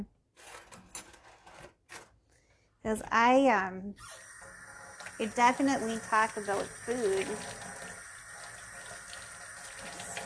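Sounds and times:
speech: 0:02.8 - 0:04.3, 0:05.2 - 0:07.7
water running from a faucet: 0:04.0 - 0:10.2.

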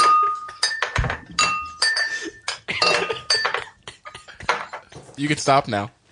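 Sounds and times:
glass beer bottles clinking together in a toast: 0:00.0 - 0:03.8, 0:04.4 - 0:05.1
speech: 0:05.2 - 0:06.0.

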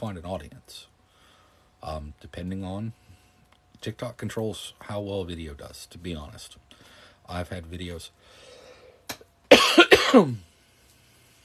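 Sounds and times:
speech: 0:00.0 - 0:00.9, 0:01.8 - 0:03.0, 0:03.8 - 0:08.5, 0:10.0 - 0:10.5
person coughing: 0:09.5 - 0:10.4.

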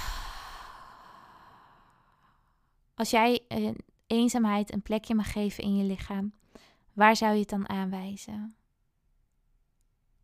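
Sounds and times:
deep breath in and out during a guided exercise: 0:00.0 - 0:02.7
speech: 0:03.0 - 0:08.6.

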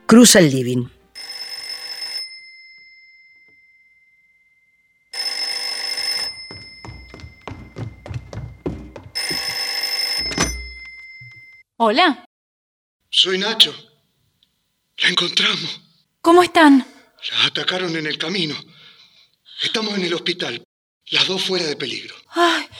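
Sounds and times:
speech: 0:00.1 - 0:01.0, 0:11.9 - 0:12.2, 0:13.2 - 0:13.9, 0:15.0 - 0:18.8, 0:19.6 - 0:22.7
telephone ringing: 0:01.2 - 0:11.6
dull thudding and knocking: 0:06.3 - 0:09.6.

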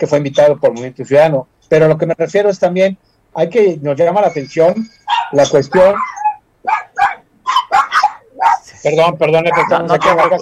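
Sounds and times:
speech: 0:00.0 - 0:06.8, 0:08.8 - 0:10.3
dogs barking: 0:05.1 - 0:08.7, 0:09.4 - 0:10.3.

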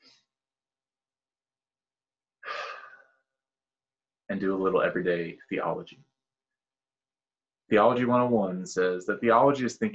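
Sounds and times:
deep breath: 0:02.4 - 0:03.3
speech: 0:04.3 - 0:06.1, 0:07.7 - 0:09.9.

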